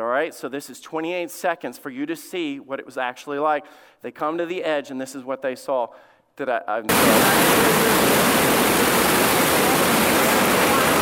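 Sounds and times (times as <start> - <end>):
speech: 0.0 - 8.4
rushing floodwater of a high river: 6.9 - 11.0.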